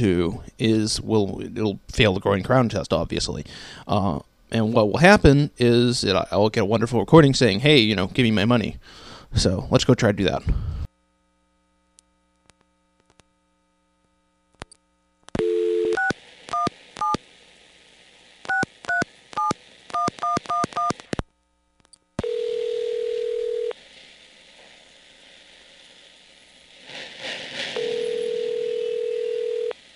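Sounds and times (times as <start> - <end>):
speech: 0.0 - 10.8
short payphone dial tone: 15.4 - 17.2, 22.2 - 23.8, 27.8 - 29.8
quiet payphone line hiss: 16.1 - 21.2, 23.5 - 29.9.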